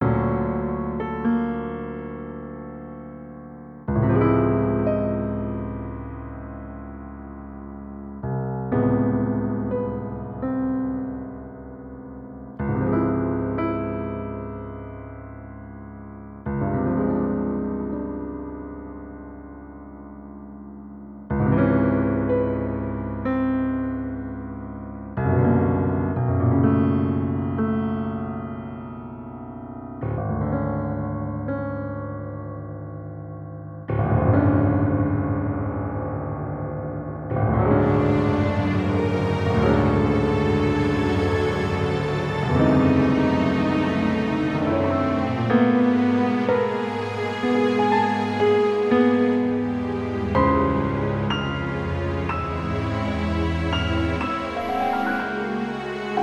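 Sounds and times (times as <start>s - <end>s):
piano: 0.0s - 56.2s
string orchestra playing a prelude: 37.7s - 56.2s.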